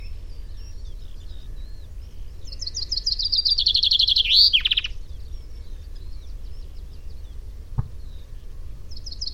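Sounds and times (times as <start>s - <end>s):
common chaffinch song: 0.0s - 9.3s.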